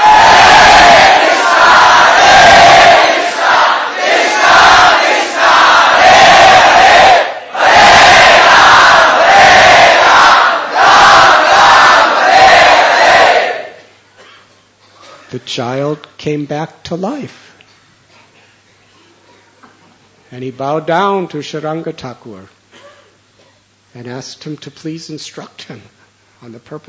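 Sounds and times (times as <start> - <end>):
large crowd chanting loudly in unison: 0.0 - 13.8
speech: 15.5 - 17.5, 20.3 - 22.6, 23.9 - 26.8.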